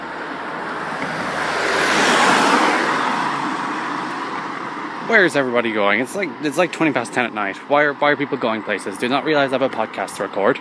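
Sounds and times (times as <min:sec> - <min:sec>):
car rushing past: 0:00.0 - 0:07.4
road traffic roar at night: 0:00.0 - 0:10.5
speech: 0:05.1 - 0:10.5.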